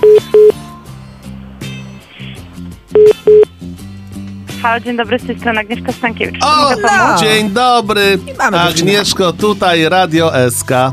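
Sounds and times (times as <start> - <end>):
electronic telephone dialing beeps: 0.0 - 0.6, 3.0 - 3.5
steady music: 0.0 - 10.9
speech: 4.6 - 10.9.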